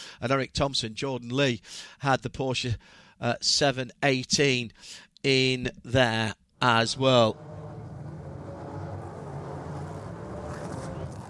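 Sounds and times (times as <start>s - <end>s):
speech: 0.2s - 7.6s
race car engines roaring on a track: 7.0s - 11.2s.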